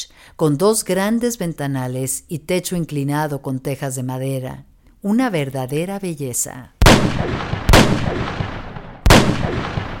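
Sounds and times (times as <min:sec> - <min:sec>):
speech: 0:00.3 - 0:08.5
gunshots with long rumbling echo: 0:06.8 - 0:09.9.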